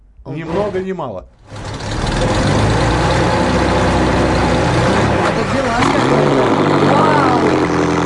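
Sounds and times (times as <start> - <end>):
speech: 0.2 - 1.6, 5.4 - 7.8
racing car engine roaring: 0.4 - 8.0.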